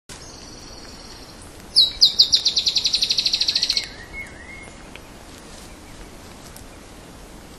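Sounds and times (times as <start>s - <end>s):
Dusky-tailed antbird singing a fast high trill at Esmeralda: 0.2s - 4.8s.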